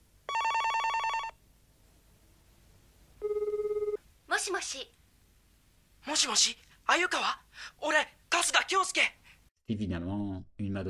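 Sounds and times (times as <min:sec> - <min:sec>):
telephone ringing with a pulsing electronic trill: 0:00.3 - 0:01.4, 0:03.2 - 0:04.0
speech: 0:04.5 - 0:05.0, 0:06.0 - 0:10.1.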